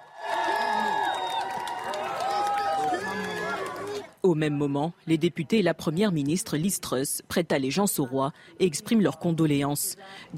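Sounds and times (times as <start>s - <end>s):
whoops and shouts: 0.0s - 4.0s
large outdoor crowd cheering: 0.0s - 4.1s
speech: 4.3s - 10.3s.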